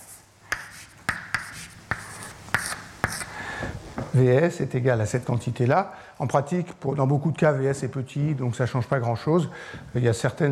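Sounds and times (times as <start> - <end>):
scratchy writing strokes during a lecture: 0.0 - 3.3
speech: 4.2 - 10.5.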